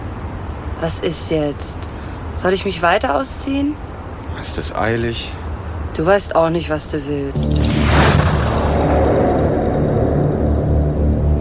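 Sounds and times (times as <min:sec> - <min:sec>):
speech: 0:00.8 - 0:05.4, 0:06.0 - 0:07.7
explosion in a parking lot: 0:07.4 - 0:11.3
huge jet of flame roaring: 0:07.4 - 0:11.3.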